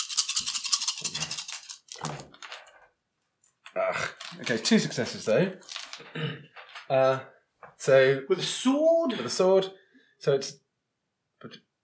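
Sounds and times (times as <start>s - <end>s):
dice shaken in a cupped hand and tumbling across a table: 0.0s - 2.9s, 3.6s - 7.0s
speech: 3.8s - 10.6s, 11.4s - 11.6s.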